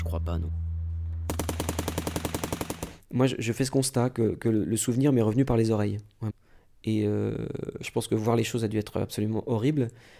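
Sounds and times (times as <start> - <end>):
speech: 0.2 - 0.6, 3.1 - 10.1
Kalashnikov automatic rifle gunfire: 1.3 - 3.1.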